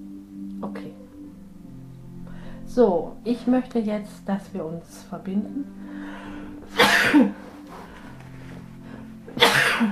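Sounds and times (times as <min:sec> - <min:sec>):
speech: 0:02.8 - 0:06.0, 0:07.0 - 0:07.5
person sneezing: 0:06.7 - 0:07.4, 0:09.4 - 0:09.9.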